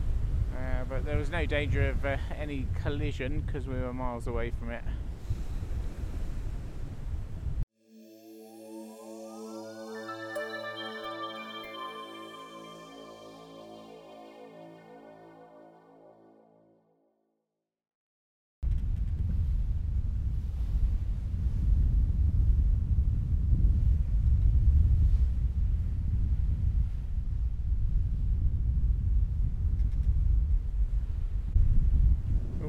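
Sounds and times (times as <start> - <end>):
stormy wind: 0.0 - 7.6, 18.6 - 32.6
speech: 1.0 - 5.0
layered gliding musical tones: 7.8 - 16.8.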